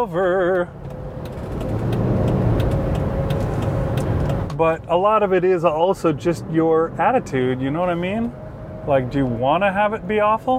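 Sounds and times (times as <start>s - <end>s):
speech: 0.0s - 0.9s, 4.6s - 10.5s
road noise from inside a moving vehicle: 0.0s - 10.5s
road traffic passing: 0.0s - 10.5s
faint ticking clicks: 0.5s - 4.6s.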